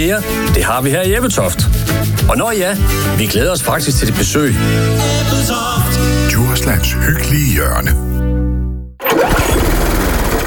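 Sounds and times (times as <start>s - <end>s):
speech: 0.0s - 8.1s
lawn mower engine starting and running with a rough clatter: 9.1s - 10.4s.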